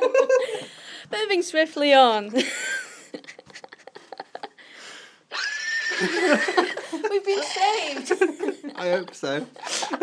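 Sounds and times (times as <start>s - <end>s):
speech: 1.3s - 2.7s, 7.3s - 10.0s
laughter: 2.4s - 4.8s, 5.8s - 10.0s
horse whinnying: 5.3s - 6.2s.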